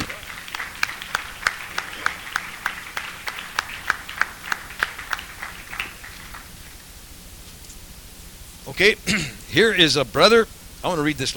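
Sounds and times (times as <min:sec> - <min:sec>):
low murmur of the crowd: 0:00.0 - 0:03.0
audience clapping in a steady even rhythm: 0:00.0 - 0:06.6
speech: 0:08.8 - 0:11.3.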